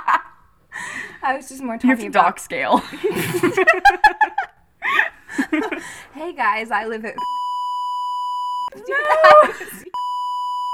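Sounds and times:
speech: 1.2s - 4.5s, 5.6s - 7.4s
laughter: 2.8s - 5.9s, 8.7s - 10.0s
steady high-pitched censor bleep tone: 7.2s - 8.7s, 10.0s - 10.7s.

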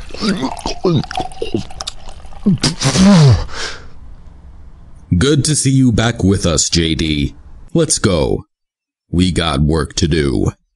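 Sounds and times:
scotch pouring and splashing: 0.0s - 3.0s
voices grunting and straining: 0.1s - 1.8s
speech: 0.2s - 1.8s, 2.4s - 3.8s, 5.2s - 8.5s, 9.1s - 10.6s.

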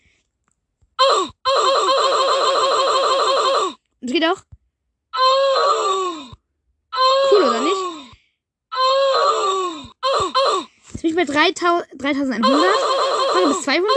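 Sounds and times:
recorded uff groan playing from a soundboard app button: 1.0s - 3.8s, 5.2s - 6.4s, 7.0s - 10.7s, 12.4s - 13.9s
speech: 4.1s - 4.5s, 11.2s - 13.9s.

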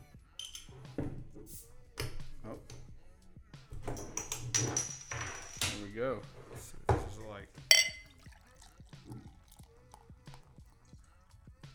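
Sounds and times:
beer bottles or cans clinking and scraping: 0.4s - 2.9s, 3.7s - 8.4s
speech: 6.0s - 7.5s
beer glugging from a bottle into a glass: 7.1s - 11.3s.

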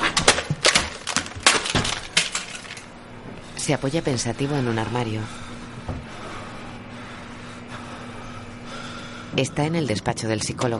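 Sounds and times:
mobile phone smashed against a kitchen counter: 0.1s - 2.8s
glassy clinking debris of a smashed mobile phone: 0.6s - 2.9s
speech: 3.7s - 5.4s, 9.4s - 10.7s.

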